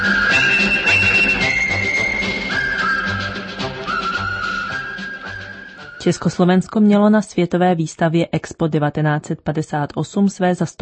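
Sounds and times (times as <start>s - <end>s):
full band accompaniment with a marching beat: 0.0s - 6.0s
whistled march melody from a film: 0.0s - 6.4s
speech: 6.0s - 10.8s.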